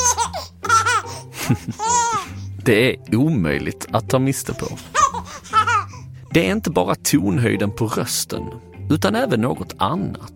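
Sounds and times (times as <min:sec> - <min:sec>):
small child laughing in bright breathy bursts: 0:00.0 - 0:02.3, 0:04.9 - 0:05.9
small child gasping between laughs: 0:00.2 - 0:02.6, 0:04.7 - 0:06.2
speech: 0:01.5 - 0:01.9, 0:02.6 - 0:05.1, 0:06.3 - 0:10.3.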